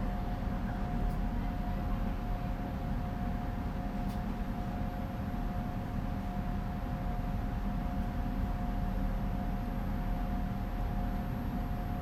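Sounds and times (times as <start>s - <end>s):
train station ambience: 0.0s - 12.0s.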